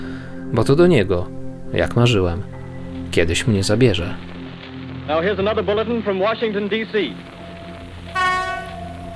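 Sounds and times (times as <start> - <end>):
speech: 0.5 - 4.3, 5.1 - 7.3
locomotive horn: 8.1 - 9.0.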